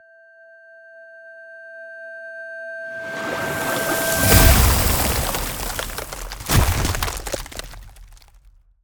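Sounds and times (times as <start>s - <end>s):
ice spell power up strength boost: 3.0s - 8.3s.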